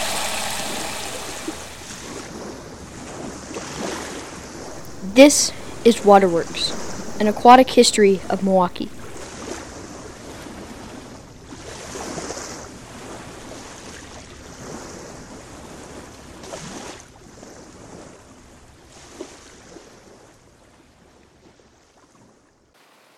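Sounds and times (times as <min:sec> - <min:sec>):
rushing water of the Milwaukee River at Esterbrook Park in Milwaukee: 0:00.0 - 0:03.0, 0:04.3 - 0:09.4
speech: 0:05.2 - 0:09.0.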